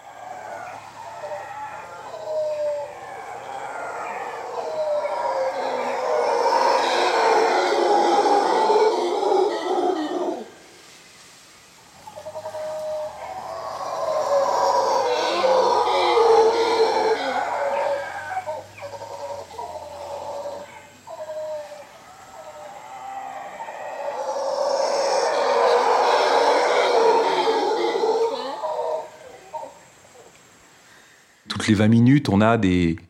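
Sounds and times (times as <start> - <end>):
howler monkeys roaring: 0.0 - 10.7, 12.0 - 30.3
speech: 31.7 - 33.0.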